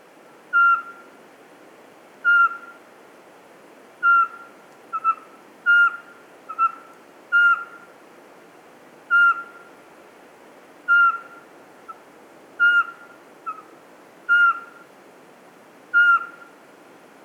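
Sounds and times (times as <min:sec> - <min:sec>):
faint background hiss: 0:00.0 - 0:17.2
Eurasian pygmy owl whistling at the top of a spruce: 0:00.5 - 0:01.0, 0:02.2 - 0:02.8, 0:04.0 - 0:07.8, 0:09.1 - 0:09.6, 0:10.9 - 0:11.4, 0:12.6 - 0:13.7, 0:14.3 - 0:14.8, 0:15.9 - 0:16.5.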